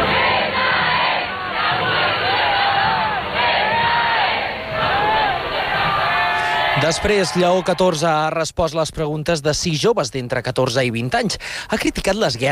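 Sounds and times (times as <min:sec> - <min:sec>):
large crowd cheering and shouting: 0:00.0 - 0:08.2
speech: 0:06.9 - 0:12.5.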